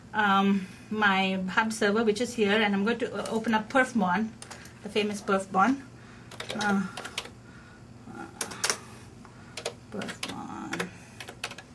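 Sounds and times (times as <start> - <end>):
speech: 0.1 - 5.9, 6.5 - 7.1, 10.0 - 10.2
typing on a computer keyboard: 6.3 - 7.3, 8.4 - 8.8, 9.6 - 11.7.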